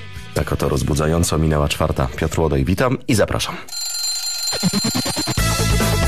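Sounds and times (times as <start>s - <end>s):
speech: 0.4s - 3.8s, 4.6s - 5.0s
alarm clock ringing: 3.7s - 5.9s.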